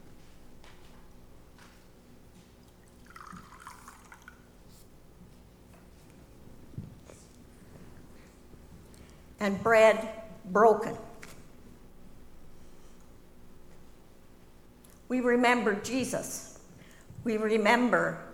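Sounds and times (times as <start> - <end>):
low hum: 0.0 - 18.3
wine pouring into a cup: 2.7 - 4.6
speech: 9.4 - 11.0, 15.1 - 16.5, 17.2 - 18.3.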